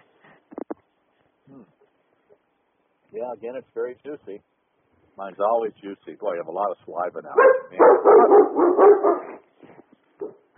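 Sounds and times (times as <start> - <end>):
speech: 3.1 - 4.5, 5.2 - 9.2
dog barking at somebody at the front of the street: 7.4 - 9.4, 10.2 - 10.5.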